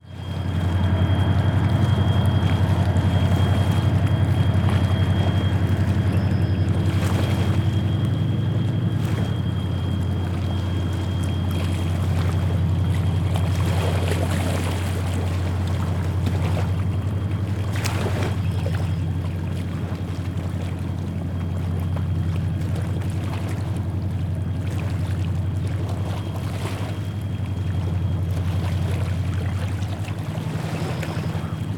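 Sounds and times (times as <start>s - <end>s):
Mississippi river waves lapping on sandy bank: 0.0s - 31.7s
passing barge diesel engines on the Mississippi river: 0.0s - 31.7s.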